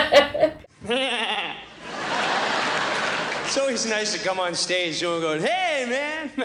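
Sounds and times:
laughter: 0:00.0 - 0:00.7, 0:01.7 - 0:04.4
person imitating a goat bleat: 0:00.8 - 0:01.7
speech: 0:03.7 - 0:06.4.

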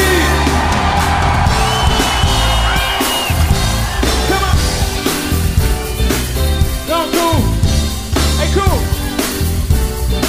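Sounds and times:
crowd screaming and whooping: 0:00.0 - 0:06.9
steady musical tones: 0:01.5 - 0:10.1.

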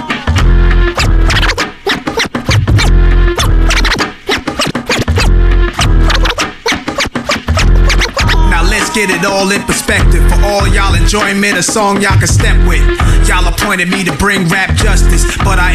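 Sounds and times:
loud thumping beat: 0:00.2 - 0:15.7
DJ scratching records on turntables: 0:00.3 - 0:12.6
speech: 0:09.2 - 0:15.7.

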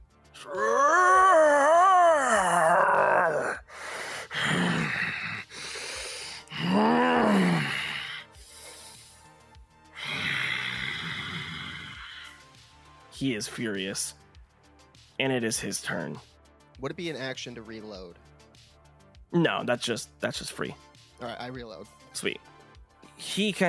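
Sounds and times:
speech: 0:00.4 - 0:00.7, 0:13.2 - 0:14.2, 0:15.2 - 0:18.3, 0:19.3 - 0:22.5, 0:23.4 - 0:23.6
person imitating a monster howling: 0:00.4 - 0:03.7, 0:04.3 - 0:05.5, 0:06.5 - 0:08.2, 0:10.0 - 0:12.4
voice imitating monster guttural growls and roars: 0:00.4 - 0:05.6, 0:06.5 - 0:08.3, 0:10.0 - 0:12.4.

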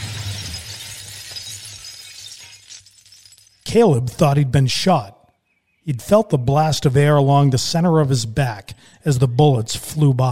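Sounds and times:
tinkling glass debris: 0:00.0 - 0:03.7
glass shattering: 0:00.0 - 0:03.8
speech: 0:03.7 - 0:05.2, 0:05.8 - 0:10.2.

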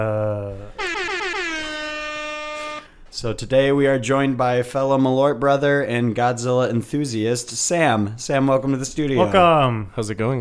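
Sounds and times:
air horn sound effect: 0:00.7 - 0:03.0
speech: 0:03.2 - 0:10.3.

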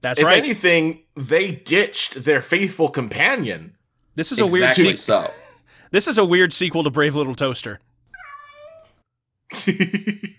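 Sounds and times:
speech: 0:00.0 - 0:07.9, 0:09.5 - 0:10.3
cat yowling and howling: 0:08.1 - 0:09.0
laughter: 0:09.5 - 0:10.3.

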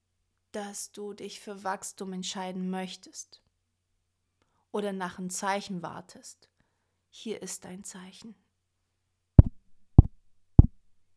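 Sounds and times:
speech: 0:00.5 - 0:03.4, 0:04.7 - 0:06.5, 0:07.1 - 0:08.4
knocking on a door: 0:09.4 - 0:10.8.

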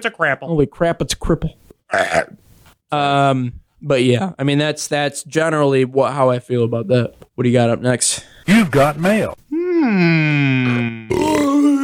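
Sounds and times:
speech: 0:00.0 - 0:11.6
long loud burp with deep droning tone: 0:01.9 - 0:02.4, 0:10.6 - 0:11.8.

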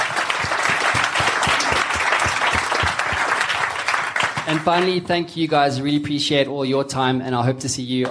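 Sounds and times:
audience clapping: 0:00.0 - 0:05.2
speech: 0:04.5 - 0:08.0.

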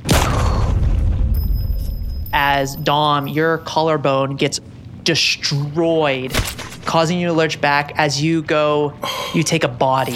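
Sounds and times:
loud gunshot: 0:00.0 - 0:01.4
speech: 0:02.4 - 0:10.1.

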